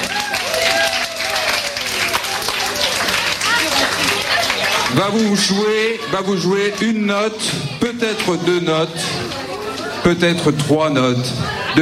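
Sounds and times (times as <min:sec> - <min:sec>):
audience clapping: 0:00.0 - 0:05.8
scattered voices and cheers: 0:00.0 - 0:11.8
speech: 0:05.0 - 0:09.4, 0:10.0 - 0:11.8.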